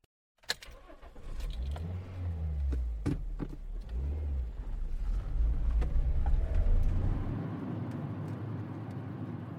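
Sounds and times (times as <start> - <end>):
car engine starting: 0.5 - 9.5
car engine revving as vehicle pulls away: 1.1 - 8.3
low continuous road drone: 1.1 - 9.5.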